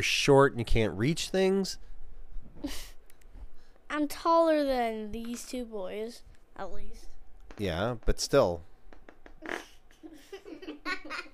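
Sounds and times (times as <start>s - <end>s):
speech: 0.0s - 1.9s, 2.6s - 2.9s, 4.0s - 8.7s, 9.4s - 9.7s
short raspy fart: 9.1s - 9.8s
few people giggling and laughing: 9.5s - 11.3s.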